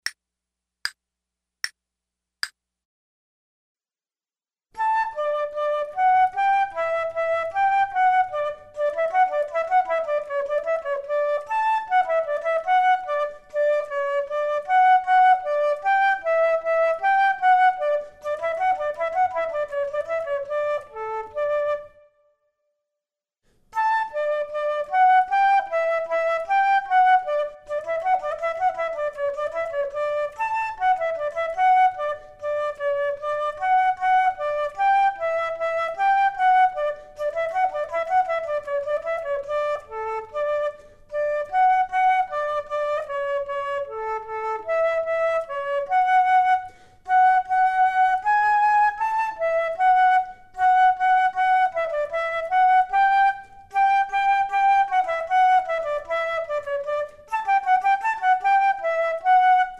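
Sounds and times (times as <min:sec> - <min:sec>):
flute duet: 0:04.8 - 0:22.5, 0:23.7 - 0:59.7.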